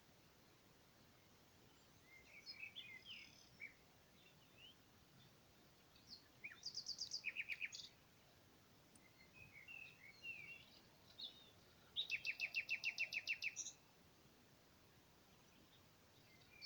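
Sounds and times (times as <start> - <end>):
common nightingale song with trills and pulsing notes: 1.7 - 8.0, 9.0 - 13.8, 15.3 - 16.6.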